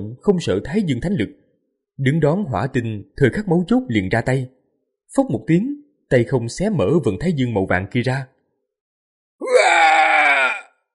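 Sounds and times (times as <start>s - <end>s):
speech: 0.0s - 1.4s, 2.0s - 8.3s
pained scream: 9.4s - 10.8s.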